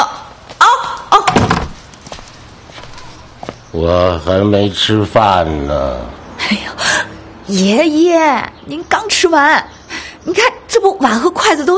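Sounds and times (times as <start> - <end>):
door slamming shut: 1.2 - 1.8
speech: 3.8 - 6.8, 7.5 - 11.7.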